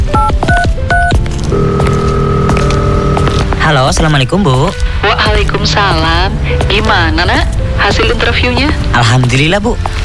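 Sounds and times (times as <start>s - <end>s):
telephone touch-tone dialing beeps: 0.1s - 3.2s
speech: 3.7s - 10.0s.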